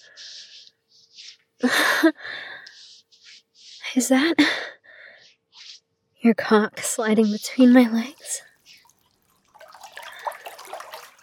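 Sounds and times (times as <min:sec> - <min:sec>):
speech: 0:01.6 - 0:02.4, 0:04.0 - 0:04.8, 0:06.2 - 0:08.5
warm spring water splashing and bubbling: 0:07.0 - 0:11.2.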